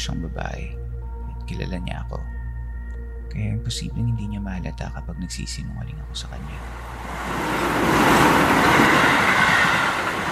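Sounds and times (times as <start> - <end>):
speech: 0.0 - 0.8, 1.5 - 2.4, 3.3 - 8.3
arriving train passing by: 6.3 - 10.3
rattling train wheel noise: 6.7 - 10.3.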